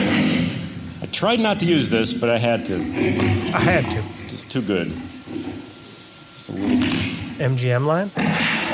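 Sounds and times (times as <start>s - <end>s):
speech: 1.2s - 5.2s, 6.5s - 8.4s
deep rumbling lion roar: 2.6s - 7.4s, 8.2s - 8.7s.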